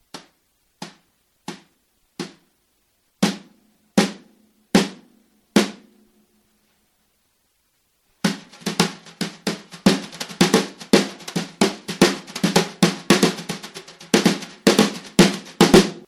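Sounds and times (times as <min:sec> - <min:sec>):
drum brushes tapping: 0:00.1 - 0:02.5, 0:08.2 - 0:16.0.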